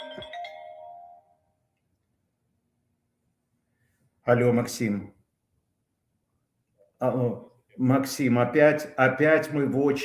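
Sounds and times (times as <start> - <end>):
phone ringtone of an incoming call: 0.0 - 1.6
speech: 4.3 - 5.2, 7.0 - 10.0.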